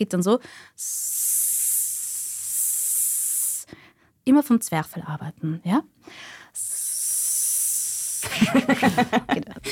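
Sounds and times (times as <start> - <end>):
speech: 0.0 - 1.3, 4.2 - 6.3, 8.4 - 9.7
person imitating an airbrush spray can hiss with their mouth: 0.8 - 3.7, 6.6 - 8.4
laughter: 8.2 - 9.7.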